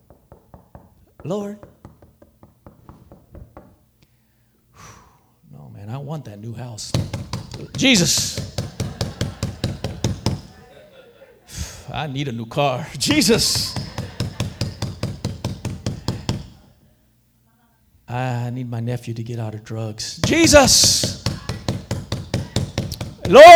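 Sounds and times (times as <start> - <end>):
knocking on a hard surface: 0.0 - 3.9, 6.9 - 10.6, 13.1 - 16.6, 20.2 - 23.5
speech: 1.2 - 1.7, 6.0 - 8.6, 12.0 - 13.7, 18.1 - 21.2, 23.3 - 23.5
laughter: 7.6 - 16.6.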